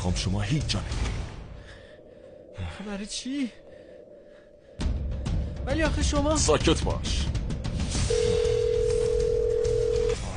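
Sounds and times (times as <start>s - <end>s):
speech: 0.0s - 1.1s, 2.6s - 3.6s, 5.6s - 7.4s
electronic phone ring tone through a phone line: 8.1s - 10.2s.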